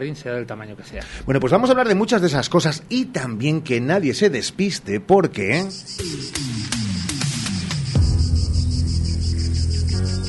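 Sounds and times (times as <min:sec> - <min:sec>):
speech: 0:00.0 - 0:06.5
cicada chirring: 0:05.5 - 0:10.2
rhythmic thumps: 0:05.7 - 0:10.2.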